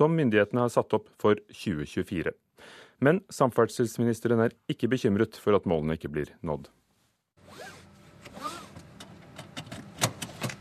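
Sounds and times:
speech: 0:00.0 - 0:06.8
car seatbelt webbing drawn out: 0:07.4 - 0:08.8.

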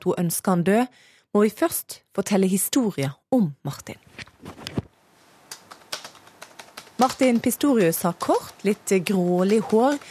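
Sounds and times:
speech: 0:00.0 - 0:04.6, 0:07.0 - 0:10.1
fingers typing on a computer keyboard: 0:05.5 - 0:10.1.

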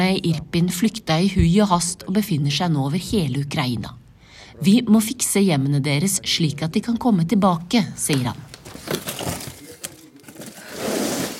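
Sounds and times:
speech: 0:00.0 - 0:04.0, 0:04.6 - 0:09.1
children's clothes crumpling and rustling while packed into a cardboard box in an office: 0:08.2 - 0:11.3.

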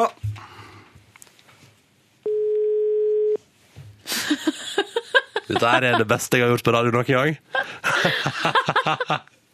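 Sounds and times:
telephone ringing tone as an outgoing call is placed: 0:02.3 - 0:03.4
laughter: 0:04.1 - 0:06.2, 0:07.6 - 0:09.3
speech: 0:05.5 - 0:09.4.

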